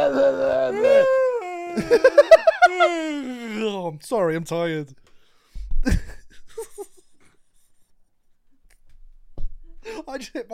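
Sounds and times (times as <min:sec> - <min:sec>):
human voice imitating a whale call: 0:00.0 - 0:02.0
laughter: 0:01.4 - 0:03.4
speech: 0:01.8 - 0:05.0, 0:05.8 - 0:06.8, 0:09.9 - 0:10.5.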